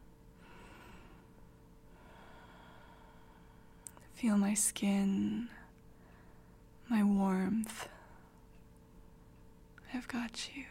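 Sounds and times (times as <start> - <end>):
slow soft breaths close to the microphone: 0.4 - 4.0, 5.9 - 6.7
speech: 4.2 - 5.6, 6.9 - 8.0, 9.9 - 10.6.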